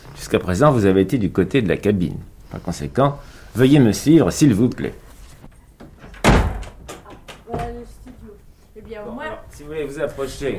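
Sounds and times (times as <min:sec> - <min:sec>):
speech: 0:00.3 - 0:05.0, 0:09.7 - 0:10.5
heavy studio door banging shut: 0:05.9 - 0:07.8.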